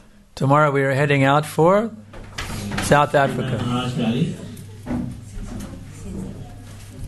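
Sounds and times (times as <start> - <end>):
speech: 0.4 - 2.0, 2.9 - 4.4
faint shuffling: 2.0 - 7.0
wooden chair breaking: 2.1 - 6.5.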